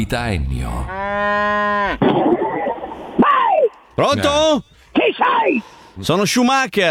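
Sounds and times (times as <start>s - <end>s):
speech: 0.0s - 2.5s, 4.0s - 6.8s
cow mooing: 0.6s - 3.5s.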